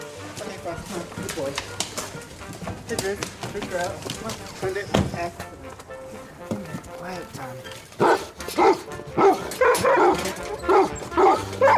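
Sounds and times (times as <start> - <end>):
rustling: 0.0 - 11.7
speech: 0.6 - 5.9, 7.0 - 10.4
Weimaraner dogs barking loudly: 7.9 - 11.7.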